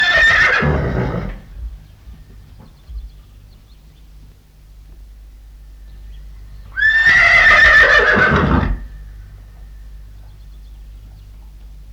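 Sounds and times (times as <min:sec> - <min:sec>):
horse whinnying: 0:00.0 - 0:01.5, 0:06.8 - 0:08.9.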